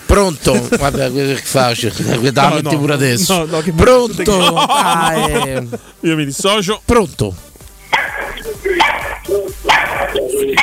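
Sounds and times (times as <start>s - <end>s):
speech: 0.1s - 7.5s
laughter: 0.4s - 5.9s, 8.0s - 10.6s
dog barking: 7.9s - 10.6s
faint murmur: 8.0s - 10.6s.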